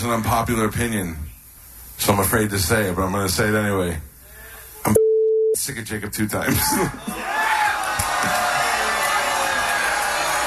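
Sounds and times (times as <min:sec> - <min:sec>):
speech: 0:00.0 - 0:01.3, 0:02.0 - 0:04.1, 0:05.6 - 0:07.4
live audience groans and cheers at an unpopular opinion: 0:06.6 - 0:10.4
scattered shouts and whoops: 0:06.6 - 0:10.4.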